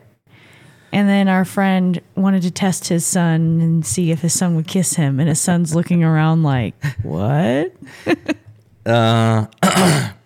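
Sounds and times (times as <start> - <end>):
speech: 0.9 - 10.2
person clearing throat: 8.9 - 10.2.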